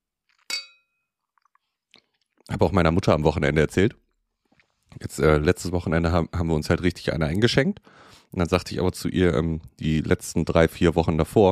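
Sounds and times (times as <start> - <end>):
drinking glasses clinking in a toast: 0.5 - 1.0
speech: 2.5 - 4.0, 5.0 - 11.5.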